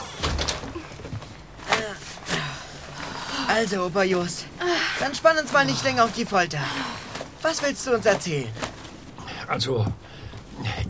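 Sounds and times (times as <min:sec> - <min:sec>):
door closing thud: 0:00.0 - 0:00.8
door creaking shut: 0:00.0 - 0:01.2
faint noise: 0:00.0 - 0:10.8
handling and shuffling: 0:00.2 - 0:10.8
speech: 0:03.5 - 0:08.6, 0:09.5 - 0:10.0.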